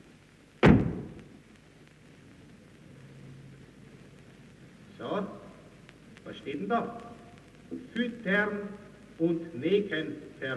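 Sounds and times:
door slamming shut with a heavy booming thud: 0.6s - 1.2s
speech: 5.0s - 5.4s, 6.3s - 7.1s, 7.9s - 10.5s.

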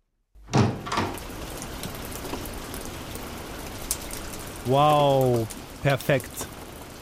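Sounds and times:
door bumping open: 0.5s - 1.3s
sudden heavy rain downpour: 0.5s - 7.0s
speech: 4.7s - 6.5s.

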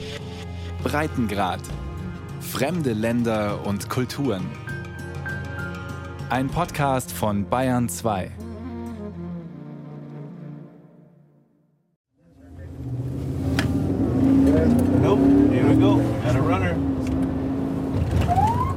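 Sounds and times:
speech: 0.8s - 1.8s, 2.5s - 4.6s, 6.3s - 8.4s
border patrol car accelerating at the border fence in El Paso: 12.2s - 18.7s.

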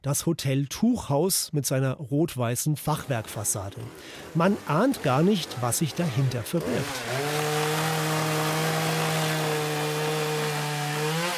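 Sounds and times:
speech: 0.0s - 7.5s
power tool droning during barn demolition: 3.0s - 11.3s.

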